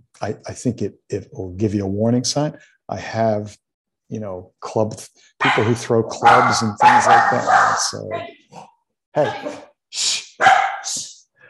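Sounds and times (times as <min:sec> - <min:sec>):
speech: 0:00.2 - 0:10.2
dog barking excitedly: 0:05.4 - 0:08.0, 0:10.4 - 0:10.9.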